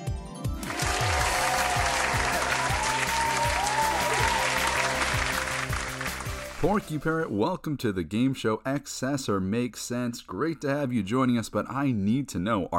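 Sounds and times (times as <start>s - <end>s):
crowd applause: 0.6s - 6.9s
speech: 6.6s - 12.7s.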